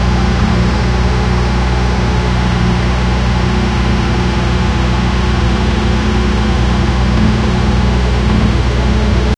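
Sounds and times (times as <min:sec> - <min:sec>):
heavy duty agricultural tractor engine: 0:00.0 - 0:09.3.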